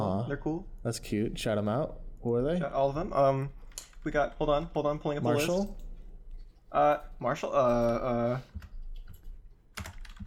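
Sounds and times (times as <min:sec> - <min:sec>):
speech: 0:00.3 - 0:05.8, 0:06.7 - 0:08.7
typing on a big loud clacky computer keyboard: 0:08.6 - 0:10.2.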